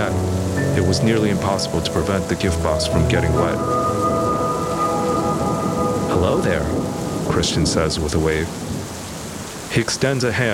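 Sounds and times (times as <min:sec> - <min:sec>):
heavy rain: 0:00.0 - 0:10.5
speech: 0:00.9 - 0:04.0, 0:06.2 - 0:08.6, 0:09.7 - 0:10.5
low rumble of thunder: 0:02.8 - 0:09.7.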